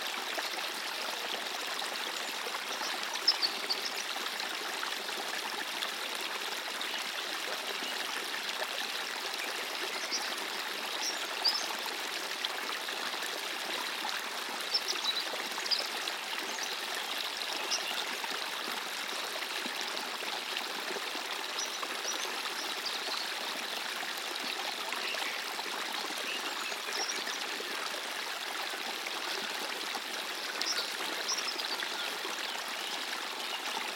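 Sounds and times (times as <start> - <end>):
natural water flowing in a steady rush: 0.0 - 33.9.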